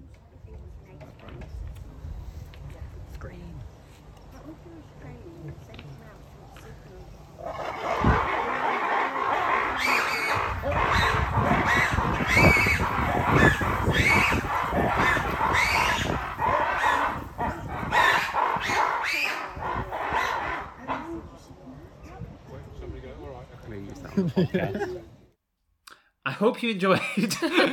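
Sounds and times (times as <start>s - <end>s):
chorus of lemurs shrieking and barking at each other: 7.4s - 21.1s
laughter: 24.0s - 25.2s, 26.8s - 27.7s
speech: 26.6s - 27.7s.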